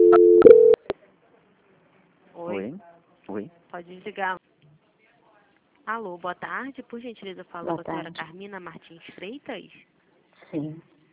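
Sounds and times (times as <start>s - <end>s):
telephone call-transfer tones: 0.0s - 0.9s
speech: 3.8s - 4.5s, 5.9s - 10.9s.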